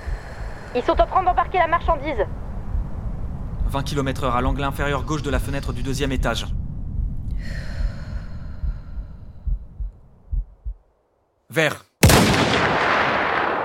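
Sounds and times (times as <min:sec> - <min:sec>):
brief breathy sound: 0:00.0 - 0:01.1, 0:07.2 - 0:09.9
soft low thumping pulses: 0:00.0 - 0:11.0
speech: 0:00.7 - 0:02.4, 0:03.7 - 0:06.6, 0:11.6 - 0:11.9
sniper rifle shot hitting its target: 0:12.0 - 0:13.6.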